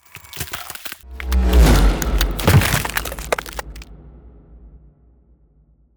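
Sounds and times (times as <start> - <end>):
ice spell shape shifting transformation effect: 0.0 - 3.8.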